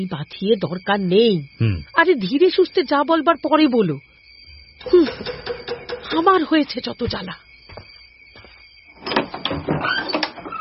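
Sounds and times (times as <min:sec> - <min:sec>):
speech: 0:00.0 - 0:04.1, 0:04.8 - 0:05.5, 0:06.1 - 0:07.4
knocker knocking on a front door: 0:04.8 - 0:06.3.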